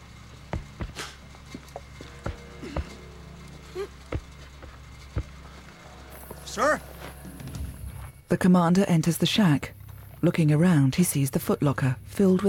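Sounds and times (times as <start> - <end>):
faint steady hum: 0.0 - 12.4
footsteps of someone walking above: 0.4 - 8.2
speech: 6.6 - 6.9, 8.3 - 12.4.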